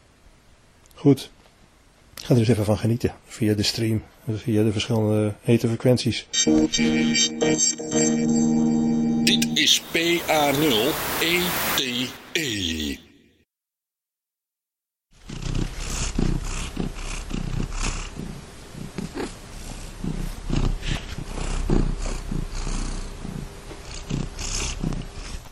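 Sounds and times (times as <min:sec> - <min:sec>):
speech: 0:01.0 - 0:01.4, 0:02.3 - 0:13.1
cat purring: 0:15.2 - 0:25.5.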